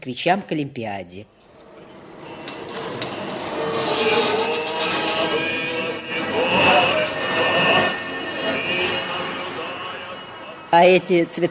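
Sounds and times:
speech: 0.0s - 1.4s, 10.7s - 11.4s
diesel locomotive hauling subway cars: 1.3s - 11.4s.

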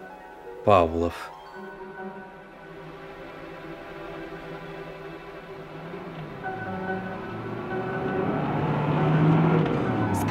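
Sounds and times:
speech: 0.6s - 1.4s
car engine rumble at high speed: 4.2s - 10.2s.

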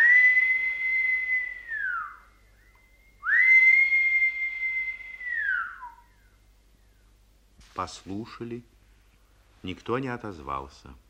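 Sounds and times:
samovar whistling: 0.0s - 7.2s
speech: 7.8s - 8.8s, 9.6s - 11.0s.

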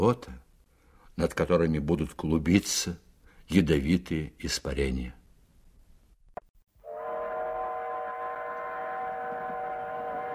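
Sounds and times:
speech: 0.0s - 0.4s, 1.2s - 5.2s
train horn long steady blast: 6.8s - 10.3s.

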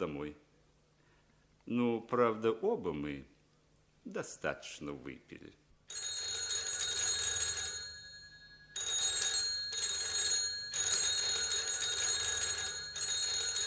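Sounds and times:
speech: 0.0s - 0.5s, 1.7s - 3.3s, 4.0s - 6.0s
old-style telephone bell ringing in an apartment at night: 5.9s - 13.6s.

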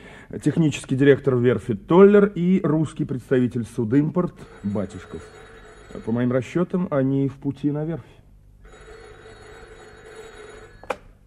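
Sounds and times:
speech: 0.3s - 8.2s
telephone bell ringing: 4.4s - 6.4s, 8.6s - 11.0s.

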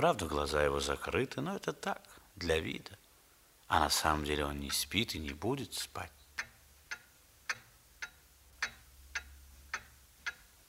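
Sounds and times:
speech: 0.0s - 3.0s, 3.7s - 6.2s
clock ticking: 3.8s - 10.6s.

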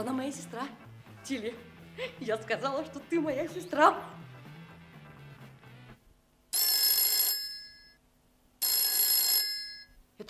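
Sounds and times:
speech: 0.0s - 4.2s
telephone bell ringing: 6.5s - 8.0s, 8.6s - 10.0s.

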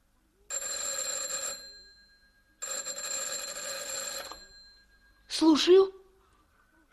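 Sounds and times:
telephone bell ringing: 0.5s - 5.2s
speech: 5.4s - 6.0s.

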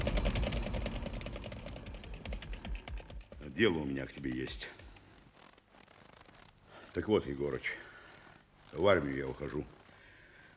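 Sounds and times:
small engine idling: 0.0s - 3.4s
speech: 3.6s - 4.8s, 6.9s - 7.9s, 8.7s - 9.8s.

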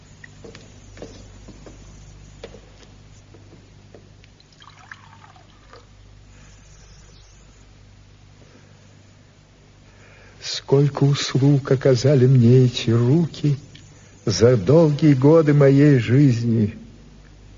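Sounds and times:
low hum: 0.0s - 17.5s
water poured into a drinking glass: 4.4s - 5.9s
speech: 10.7s - 13.7s, 14.3s - 16.8s.

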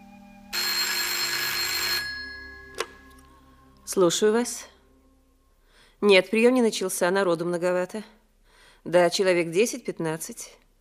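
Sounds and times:
telephone bell ringing: 0.5s - 3.2s
speech: 3.9s - 4.7s, 6.0s - 8.2s, 8.8s - 10.6s.

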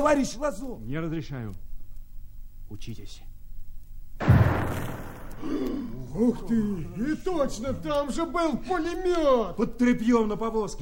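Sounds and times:
speech: 0.0s - 1.7s, 2.7s - 3.3s, 5.4s - 10.8s
grenade explosion at a wagon in a firefight: 4.2s - 6.0s.

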